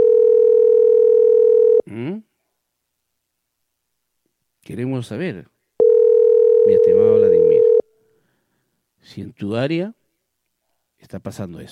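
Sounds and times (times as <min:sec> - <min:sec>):
telephone call tone while waiting for an answer: 0:00.0 - 0:01.9, 0:05.8 - 0:07.9
speech: 0:04.7 - 0:05.6, 0:06.6 - 0:07.5, 0:09.0 - 0:10.0, 0:11.0 - 0:11.6.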